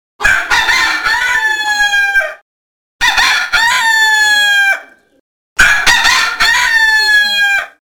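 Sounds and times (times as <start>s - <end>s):
rooster: 0.2s - 2.4s, 3.0s - 7.8s.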